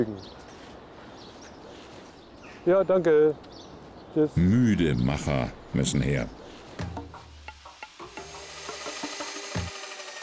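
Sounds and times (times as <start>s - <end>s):
speech: 0.0s - 0.4s, 2.6s - 3.5s, 4.2s - 6.4s
steady mechanical hiss: 6.7s - 10.2s
construction site tools rasping and scraping: 8.0s - 10.2s.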